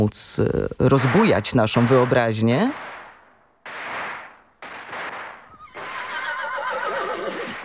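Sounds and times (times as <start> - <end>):
speech: 0.0 - 2.9
horse neighing: 5.5 - 7.6.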